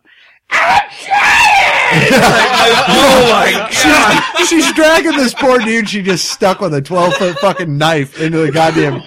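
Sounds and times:
woman screaming in a film: 0.5 - 2.1
laughter: 1.8 - 9.0
speech: 2.0 - 9.0.

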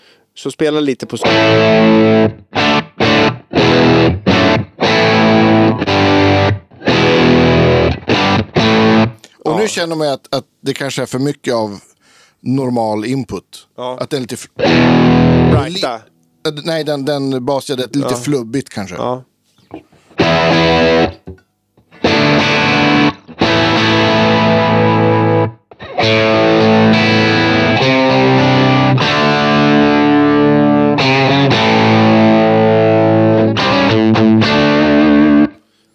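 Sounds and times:
speech: 0.4 - 2.8, 9.6 - 21.4
heavily distorted electric guitar chords through cranked Plexi amp setting: 1.2 - 9.2, 14.6 - 15.8, 20.2 - 35.6.

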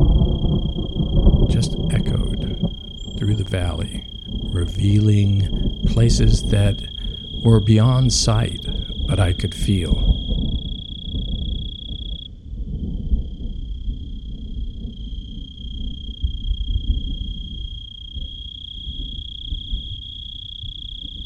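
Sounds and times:
deep continuous rumble of thunder: 0.0 - 11.7
crickets trilling during a thunderstorm: 0.0 - 12.3, 13.2 - 21.2
speech: 3.2 - 10.1.

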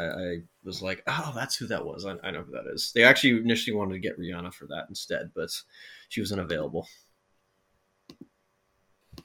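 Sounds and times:
speech: 0.0 - 7.0
computer mouse clicks: 8.1 - 8.3.

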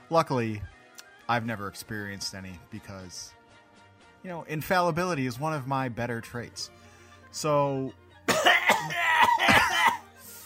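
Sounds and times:
speech: 0.1 - 0.7, 1.3 - 3.4, 4.2 - 9.6
coughing and throat clearing: 8.3 - 10.1.

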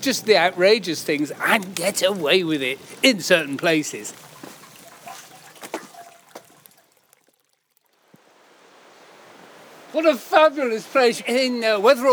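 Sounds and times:
speech: 0.0 - 4.2, 10.0 - 12.1
river water flowing: 0.0 - 12.1.

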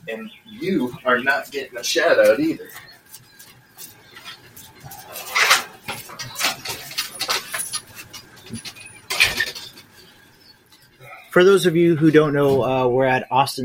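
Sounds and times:
speech: 0.0 - 2.9, 11.4 - 13.6
puppy's faint jingling tags: 0.1 - 11.4
puppy paw steps scratching: 0.5 - 11.0.

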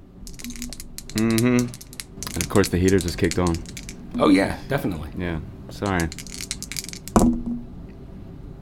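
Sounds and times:
dice rolling on a hard table in a tabletop game: 0.3 - 4.4, 5.7 - 7.7
speech: 1.2 - 6.3.

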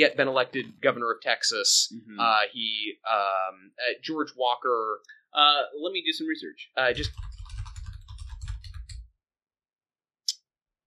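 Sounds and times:
speech: 0.0 - 7.4
typing on a laptop's built-in keyboard: 6.9 - 9.1.

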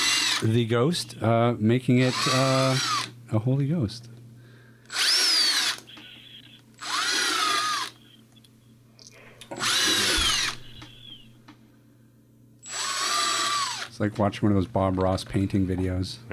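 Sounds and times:
power drill drilling holes in a ghost decoration: 0.0 - 0.5, 2.1 - 3.1, 4.9 - 8.5, 9.5 - 11.2, 12.6 - 13.9
speech: 0.4 - 4.1, 14.0 - 16.3.

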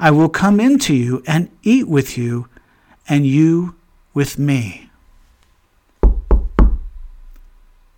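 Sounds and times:
speech: 0.0 - 2.5, 3.1 - 4.9
firm knocks on a wooden door: 6.0 - 7.1.

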